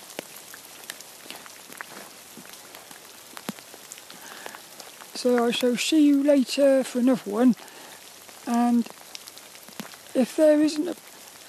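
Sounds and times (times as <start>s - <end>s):
steady rain pattering onto a hard surface: 0.0s - 11.4s
speech: 5.2s - 7.7s, 8.5s - 9.0s, 10.2s - 11.0s.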